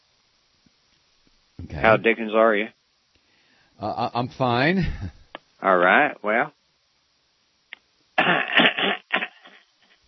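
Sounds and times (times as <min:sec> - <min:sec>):
speech: 0:01.6 - 0:02.8, 0:03.8 - 0:06.6
person on a phone call clearing throat: 0:08.2 - 0:09.6.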